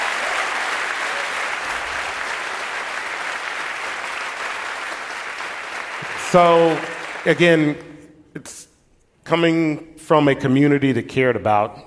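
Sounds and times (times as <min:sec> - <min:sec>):
audience applause: 0:00.0 - 0:07.8
speech: 0:06.3 - 0:08.7, 0:09.3 - 0:11.8.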